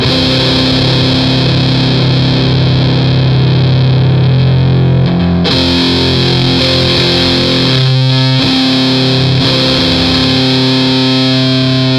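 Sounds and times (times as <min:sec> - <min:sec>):
ultrafuzz guitar: 0:00.0 - 0:11.9.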